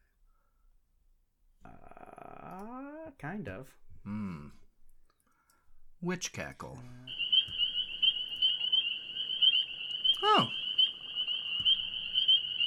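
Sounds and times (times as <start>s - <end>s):
speech: 3.2s - 4.6s, 6.0s - 7.2s
peeper frogs calling at night: 6.8s - 12.6s.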